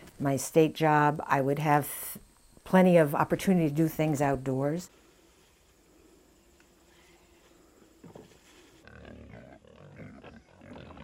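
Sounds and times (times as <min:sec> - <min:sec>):
speech: 0:00.2 - 0:05.0
pigs grunting and snorting on a farm: 0:08.0 - 0:11.0.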